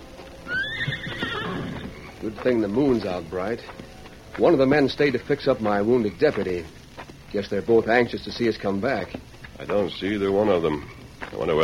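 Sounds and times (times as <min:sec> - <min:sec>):
soft hoof clops: 0:00.0 - 0:11.6
horse whinnying: 0:00.4 - 0:02.2
speech: 0:02.2 - 0:11.6.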